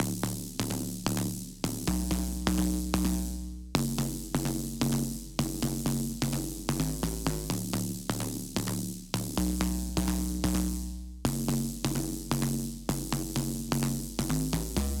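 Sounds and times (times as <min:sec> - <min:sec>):
house drop bass loop in F sharp minor at 128 BPM: 0:00.0 - 0:14.9.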